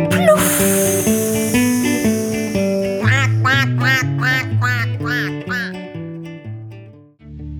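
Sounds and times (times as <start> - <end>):
duck quacking: 0.1 - 5.9.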